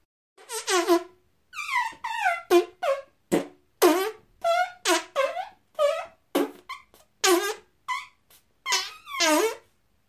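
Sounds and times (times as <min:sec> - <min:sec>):
squeaky fart sound effects: 0:00.4 - 0:09.8.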